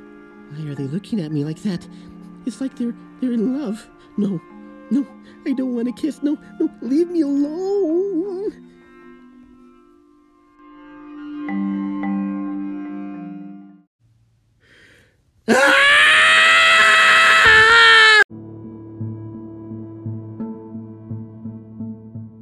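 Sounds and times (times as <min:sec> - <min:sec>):
speech: 0:00.5 - 0:08.6
zombies screaming: 0:15.5 - 0:18.3.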